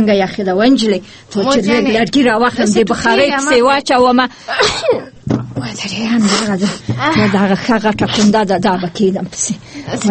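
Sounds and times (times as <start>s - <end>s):
speech: 0.0s - 10.0s
child coughing: 4.5s - 5.2s.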